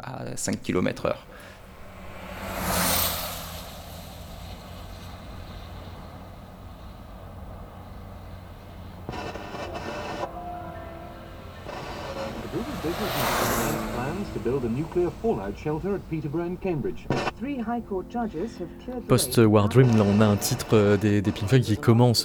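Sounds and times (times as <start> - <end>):
speech: 0.0 - 1.6, 14.4 - 22.2
car passing with Doppler pitch shift: 0.5 - 21.6
music: 15.5 - 22.2.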